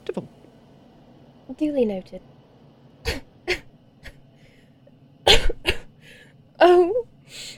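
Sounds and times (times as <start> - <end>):
speech: 1.6 - 2.3
person deliberately fake coughing: 3.1 - 3.7, 5.3 - 5.9.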